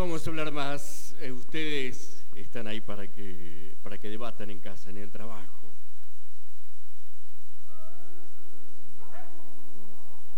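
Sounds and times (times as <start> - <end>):
speech: 0.1 - 5.8
dogs howling: 7.6 - 10.3
dog barking: 9.0 - 10.3.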